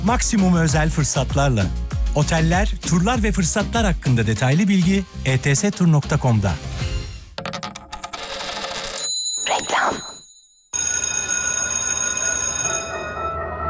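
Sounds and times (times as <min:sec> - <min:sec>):
speech: 0:00.0 - 0:06.7
school bell ringing: 0:10.7 - 0:13.6.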